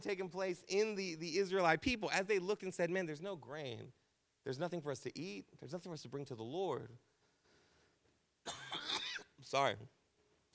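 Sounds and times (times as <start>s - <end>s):
speech: 0.0s - 7.1s, 9.4s - 10.0s
person coughing violently: 8.5s - 9.3s.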